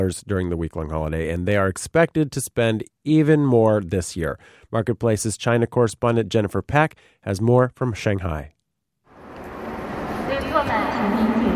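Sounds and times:
speech: 0:00.0 - 0:08.6
footsteps in crowded railway station: 0:09.2 - 0:11.5
many overlapping voices in crammed Hongqiao railway station in Shanghai during holiday travel rush: 0:09.2 - 0:11.5.

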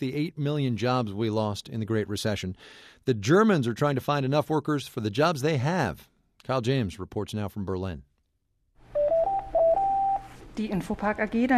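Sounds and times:
speech: 0:00.0 - 0:08.1, 0:10.6 - 0:11.5
telephone ringing in an office: 0:08.9 - 0:10.4
electronic beeping tones of a telephone: 0:09.0 - 0:10.4.

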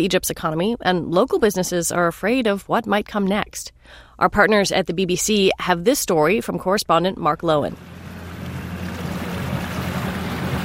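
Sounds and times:
speech: 0:00.0 - 0:08.0
motorboat engine droning low and steady on open sea: 0:07.8 - 0:10.6
rush and splash of sea water: 0:07.8 - 0:10.6
wind: 0:07.8 - 0:10.6.

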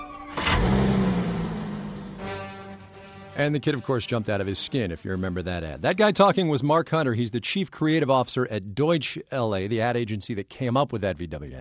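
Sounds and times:
Volkswagen Passat engine started remotely with a key fob, revving and idling: 0:00.2 - 0:02.9
speech: 0:03.4 - 0:11.5.

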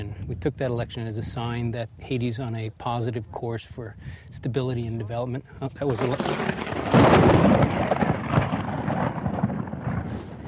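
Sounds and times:
speech: 0:00.0 - 0:06.6
loud broad thunder roar: 0:05.9 - 0:10.4
nearby lightning strike crack: 0:05.9 - 0:10.4
rushing rain-like noise: 0:05.9 - 0:10.4.

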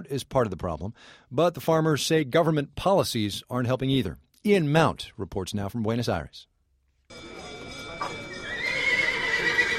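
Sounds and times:
speech: 0:00.0 - 0:06.5
outdoor bustle at a busy livestock market: 0:07.1 - 0:09.7
horse whinnying at a livestock market: 0:08.5 - 0:09.7.

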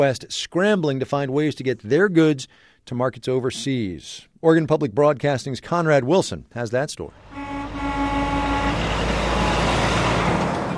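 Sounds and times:
speech: 0:00.0 - 0:07.6
several trucks' heavy diesel engines idling outside a container yard: 0:07.2 - 0:10.7.

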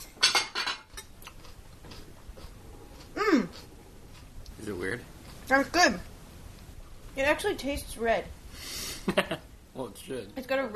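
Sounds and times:
dishes and bowls clinking as soup and salad are served: 0:00.0 - 0:01.1
crockery and cutlery clattering: 0:00.1 - 0:01.1
speech: 0:05.5 - 0:06.1, 0:07.2 - 0:08.4, 0:09.0 - 0:10.7.

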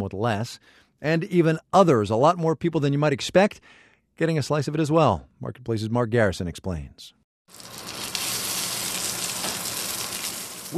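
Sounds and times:
speech: 0:00.0 - 0:08.0
pork belly frying in a pan: 0:07.5 - 0:10.7.

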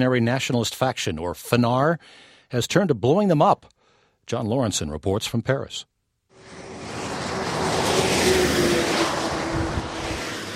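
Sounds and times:
speech: 0:00.0 - 0:06.6
car slowing to 30 miles an hour entering a village north of Paris: 0:06.4 - 0:10.5.

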